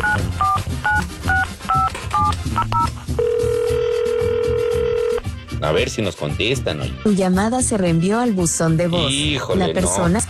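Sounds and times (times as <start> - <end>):
telephone touch-tone keypad beeps: 0.0 - 5.2
speech: 5.6 - 10.2.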